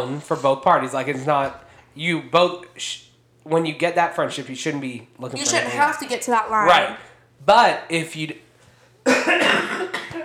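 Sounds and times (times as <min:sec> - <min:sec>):
speech: 0:00.0 - 0:08.4, 0:09.0 - 0:10.2
two people coughing raspy coughs: 0:09.0 - 0:10.2.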